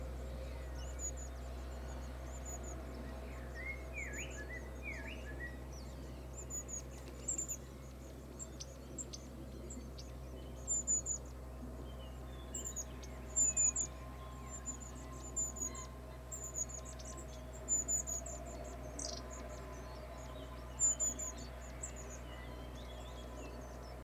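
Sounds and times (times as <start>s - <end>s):
long-tailed tit Aegithalos caudatus calls and song: 0.0s - 24.0s.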